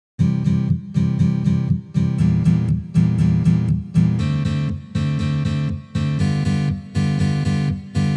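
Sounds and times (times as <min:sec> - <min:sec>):
chord progression with diminished chords: 0:00.2 - 0:08.1.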